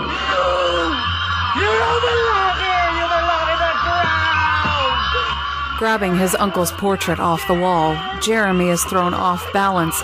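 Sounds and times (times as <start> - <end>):
man screaming in enraged horror: 0.0 - 5.8
speech: 5.8 - 10.0.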